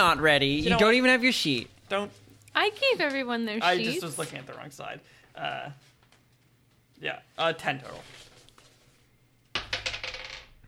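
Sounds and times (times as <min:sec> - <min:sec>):
speech: 0:00.0 - 0:05.9, 0:07.0 - 0:08.3
dice rolling on a hard table: 0:09.6 - 0:10.6.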